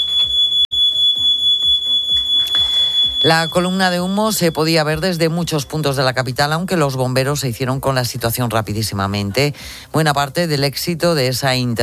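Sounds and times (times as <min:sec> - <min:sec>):
building fire alarm high-pitched electronic tone: 0:00.0 - 0:06.7
speech: 0:03.2 - 0:11.8.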